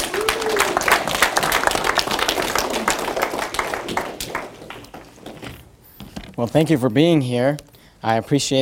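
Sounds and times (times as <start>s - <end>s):
crowd applauding to welcome a visiting pastor: 0.0s - 5.3s
speech: 6.4s - 8.6s.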